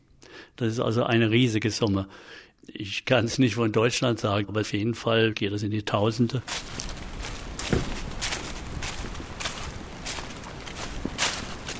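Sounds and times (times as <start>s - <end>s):
speech: 0.6s - 6.9s
constant hiss of rainfall: 6.4s - 11.7s
footsteps marching up to a rocky summit: 6.4s - 11.7s.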